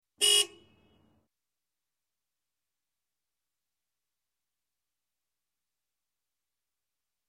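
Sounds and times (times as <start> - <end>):
truck horn blast: 0.2 - 0.8.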